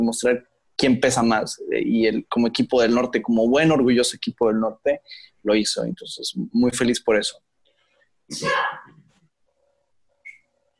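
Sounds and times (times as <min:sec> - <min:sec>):
speech: 0:00.0 - 0:07.5, 0:08.3 - 0:08.8
person sneezing: 0:08.3 - 0:09.0.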